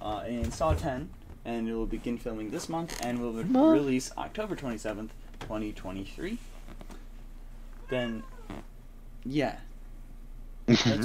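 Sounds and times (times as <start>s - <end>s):
speech: 0.3s - 6.5s, 7.9s - 9.7s, 10.7s - 11.0s
cat meowing with drawn-out wavering cries: 7.8s - 8.6s.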